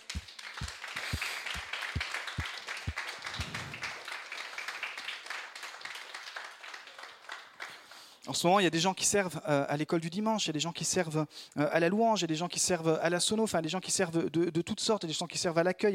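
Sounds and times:
large audience applauding: 0.0s - 7.9s
speech: 8.3s - 15.9s.

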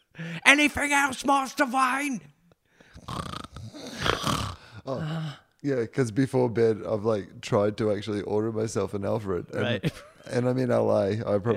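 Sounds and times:
speech: 0.2s - 2.4s, 4.8s - 11.5s
person imitating snoring: 3.0s - 5.4s.

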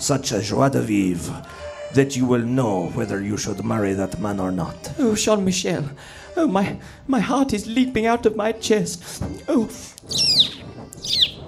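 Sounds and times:
speech: 0.0s - 11.4s
bird chirping with bright sweeping trills: 10.0s - 11.4s.

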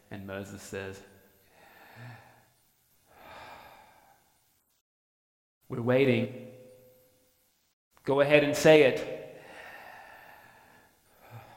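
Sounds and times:
speech: 0.2s - 1.1s, 5.7s - 6.4s, 8.0s - 9.2s
person breathing in and out: 1.5s - 4.4s, 9.3s - 11.5s.

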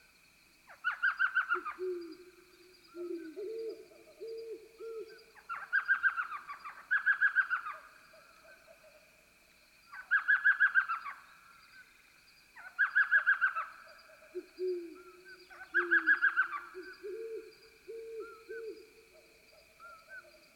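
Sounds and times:
cricket chorus: 0.0s - 20.5s
elf, screech and great horned owls tooting and hooting: 0.8s - 2.3s, 2.9s - 7.8s, 12.6s - 13.7s, 14.3s - 18.9s.

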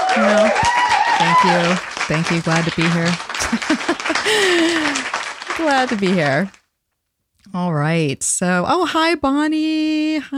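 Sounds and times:
single person clapping hands: 0.0s - 6.6s
speech: 0.2s - 0.7s, 1.4s - 6.6s, 7.4s - 10.3s
laughter: 1.2s - 6.4s.

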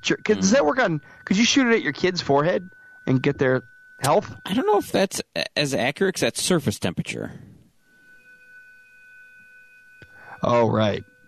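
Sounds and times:
fire alarm high-pitched tone: 0.0s - 5.2s, 7.8s - 11.2s
speech: 0.0s - 7.5s, 10.4s - 11.1s.

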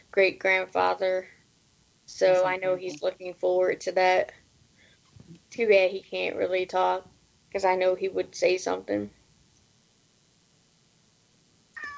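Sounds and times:
quiet steady hiss: 0.0s - 11.9s
speech: 0.1s - 1.4s, 2.1s - 4.4s, 5.5s - 9.2s
cat meowing: 11.8s - 11.9s.

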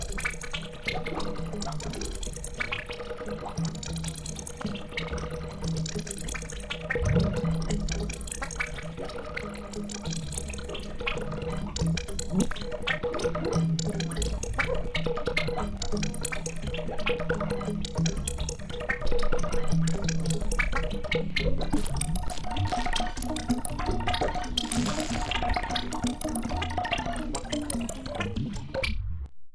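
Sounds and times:
dense layer of small clicks snaps and rasps from manipulated frogs zippers twigs and strings: 0.0s - 29.0s
low steady drone: 7.0s - 9.0s.

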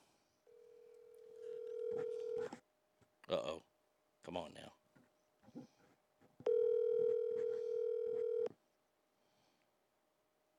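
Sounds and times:
steady electronic telephone tone: 0.5s - 2.4s, 6.5s - 8.5s
speech: 3.3s - 4.8s.

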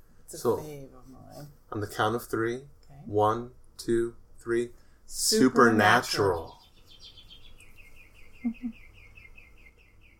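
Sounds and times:
speech: 0.3s - 6.6s, 8.4s - 8.8s
birds chirping: 6.0s - 10.1s.

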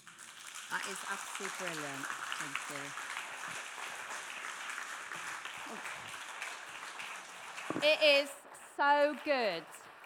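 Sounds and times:
speech: 0.7s - 3.7s, 5.7s - 6.0s, 7.7s - 9.8s
crowd applauding: 3.2s - 7.8s.

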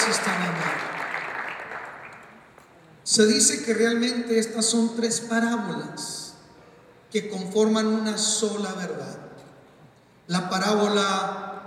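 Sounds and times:
audience applauding: 0.0s - 2.5s
speech: 0.1s - 1.0s, 3.1s - 6.2s, 7.1s - 9.2s, 10.3s - 11.4s.

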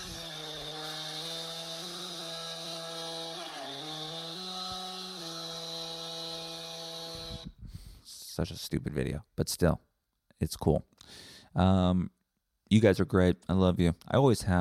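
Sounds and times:
auto-tuned chainsaw drone stepping between musical notes: 0.0s - 7.5s
speech: 8.4s - 14.5s.

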